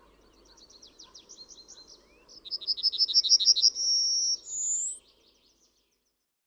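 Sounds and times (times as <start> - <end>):
Yellowhammer singing: 0.0 - 5.2.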